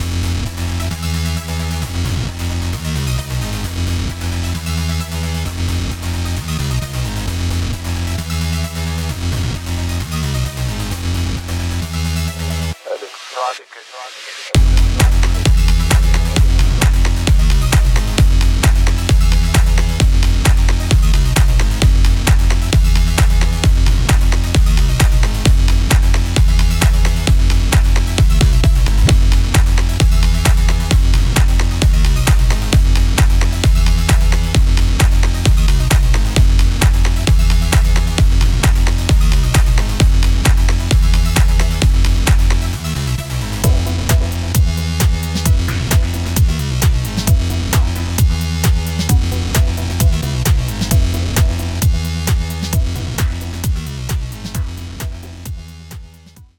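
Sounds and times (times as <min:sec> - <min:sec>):
electronic background music: 0:00.0 - 0:56.5.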